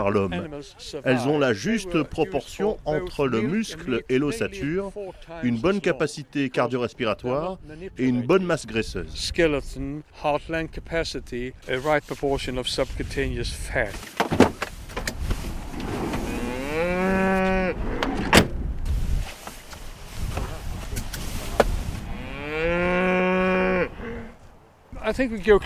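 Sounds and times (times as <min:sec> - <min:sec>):
speech: 0:00.0 - 0:14.5, 0:25.1 - 0:25.6
rustling background: 0:11.6 - 0:17.4, 0:18.8 - 0:22.3
hornless Swedish Red polled cows mooing: 0:16.2 - 0:17.8, 0:22.0 - 0:24.4.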